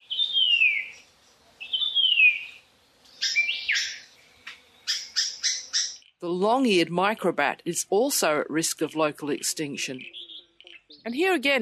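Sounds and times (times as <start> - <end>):
White-eared Monarch calling: 0.0 - 1.0, 1.6 - 2.6, 3.2 - 6.0, 10.0 - 11.1
speech: 6.2 - 10.2, 11.0 - 11.6.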